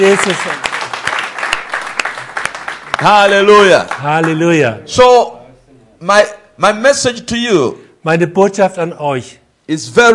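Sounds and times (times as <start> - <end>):
speech: 0.0 - 0.6, 3.0 - 5.4, 6.0 - 10.1
audience applause: 0.0 - 4.4.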